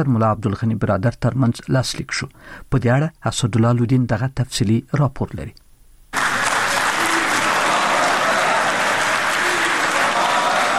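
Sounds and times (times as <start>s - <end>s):
speech: 0.0s - 5.6s
applause at a peace agreement signing ceremony in a luxury hotel in Doha: 6.1s - 10.7s.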